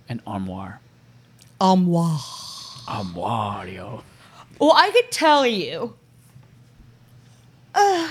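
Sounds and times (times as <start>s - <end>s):
speech: 0.1s - 0.9s, 1.6s - 6.0s, 7.8s - 8.0s
person giving a loud drawn-out voiced yawn: 2.0s - 3.2s.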